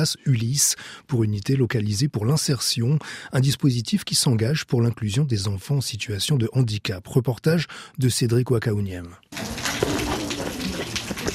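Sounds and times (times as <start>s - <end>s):
speech: 0.0s - 10.1s
rain drips and splashes: 9.3s - 11.3s
rain pouring at a vocational high school in Païta New Caledonia: 9.3s - 11.3s.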